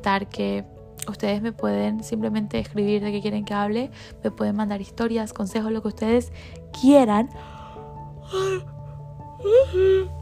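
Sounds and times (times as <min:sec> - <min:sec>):
speech: 0:00.0 - 0:07.6, 0:08.3 - 0:08.8, 0:09.4 - 0:10.2
person yawning: 0:09.4 - 0:10.2.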